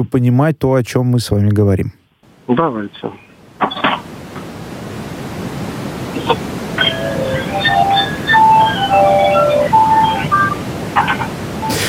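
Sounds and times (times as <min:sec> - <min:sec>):
speech: 0:00.0 - 0:03.8, 0:06.3 - 0:06.5
steady even hiss of white noise: 0:00.0 - 0:11.8
faint high tinkling melody: 0:06.8 - 0:10.6.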